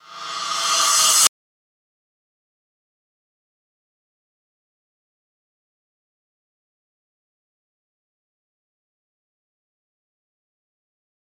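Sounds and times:
reverse cymbal with reverb: 0.0s - 1.3s.

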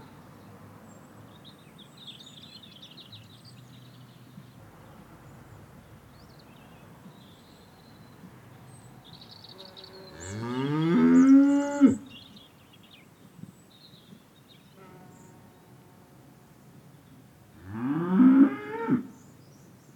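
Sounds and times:
cow mooing: 10.1s - 12.1s, 17.6s - 19.1s.

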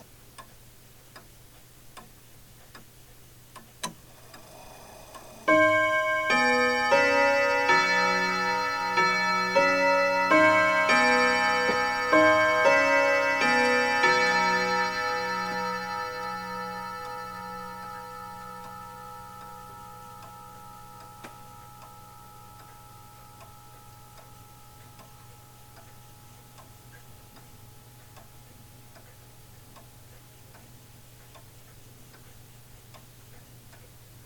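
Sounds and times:
three quarter hour clock chime: 4.2s - 30.6s.

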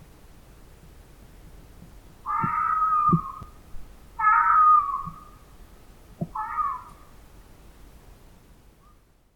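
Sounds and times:
fox wailing cries: 2.2s - 3.6s, 4.2s - 5.4s, 6.2s - 7.1s.

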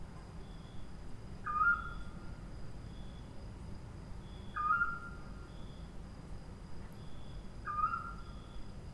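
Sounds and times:
insect drones: 0.0s - 8.9s
screech owl calling: 1.4s - 2.2s, 4.4s - 5.2s, 7.6s - 8.6s.

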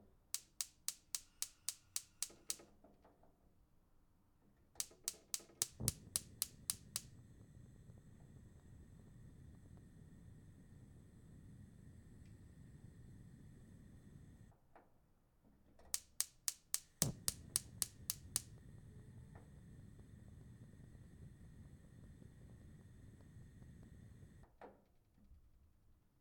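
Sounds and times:
gas stove: 0.3s - 2.6s, 4.8s - 14.5s, 15.9s - 24.6s.

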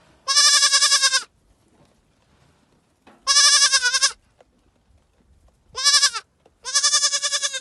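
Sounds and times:
sheep bleating: 0.3s - 1.3s, 3.3s - 4.2s, 5.8s - 7.5s.

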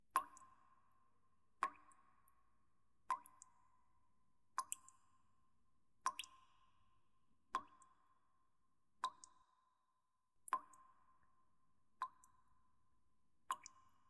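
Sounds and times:
water dripping with reverb: 0.1s - 1.0s, 1.6s - 5.4s, 6.0s - 6.8s, 7.6s - 8.4s, 9.0s - 9.8s, 10.4s - 12.8s, 13.4s - 14.0s.

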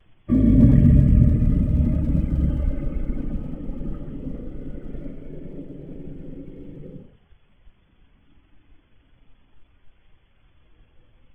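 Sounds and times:
dinosaur growl: 0.3s - 7.1s.

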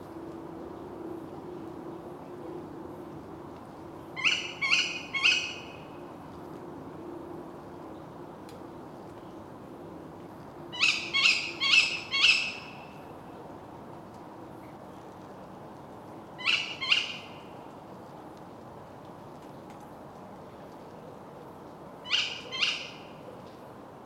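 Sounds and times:
female tawny owl calling in harsh shrill bursts: 4.2s - 5.8s, 10.8s - 12.8s, 16.4s - 17.3s, 22.1s - 23.1s.

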